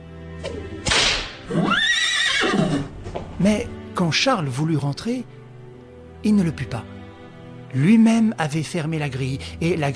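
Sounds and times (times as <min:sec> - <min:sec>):
speech: 0:00.4 - 0:00.7, 0:03.4 - 0:05.4, 0:06.2 - 0:06.9, 0:07.7 - 0:09.9
whip crack as a horse-drawn cab sets off: 0:00.4 - 0:01.5
horse of a horse-drawn cab whinnying: 0:01.4 - 0:03.0.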